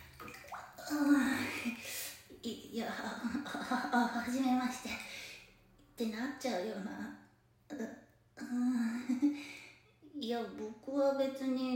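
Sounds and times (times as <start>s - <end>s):
person getting into hot bath water, water swishing and sloshing: 0.0s - 6.0s
speech: 0.9s - 5.1s, 6.0s - 9.5s, 10.2s - 11.7s.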